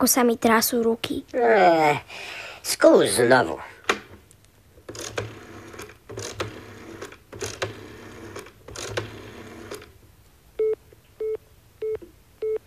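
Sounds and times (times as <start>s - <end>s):
speech: 0.0s - 4.0s
telephone dialing: 4.9s - 9.9s
busy signal beeps: 10.6s - 12.6s.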